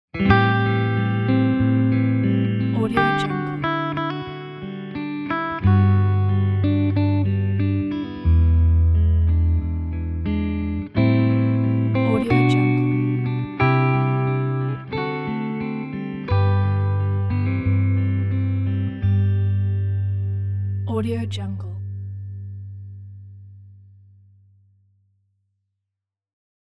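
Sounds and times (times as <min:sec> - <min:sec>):
soft warm jazz guitar ident: 0:00.2 - 0:20.8.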